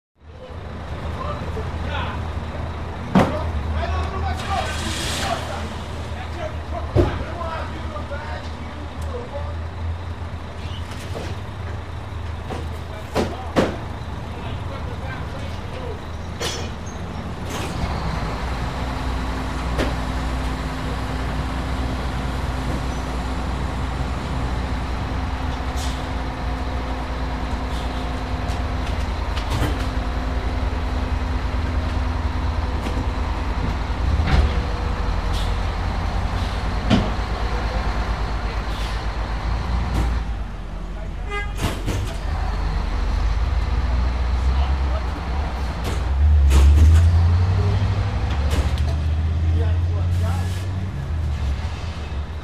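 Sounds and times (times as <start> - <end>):
garbage truck: 0.3 - 52.4.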